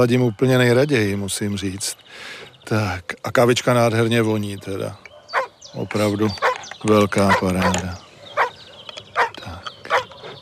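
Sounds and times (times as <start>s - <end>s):
speech: 0.0s - 5.1s, 5.7s - 8.1s
dog barking: 5.1s - 5.8s, 6.4s - 6.6s, 7.2s - 10.2s.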